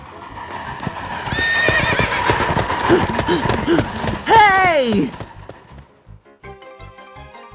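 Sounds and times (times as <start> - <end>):
horse hooves galloping: 0.2 - 6.2
horse whinnying: 1.3 - 5.1
horse snorting: 1.4 - 5.8.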